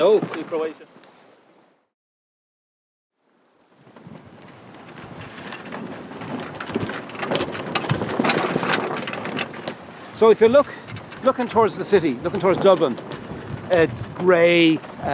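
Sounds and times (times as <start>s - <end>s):
speech: 0.0s - 1.0s, 10.2s - 15.1s
strong wind blowing outdoors: 3.8s - 15.1s.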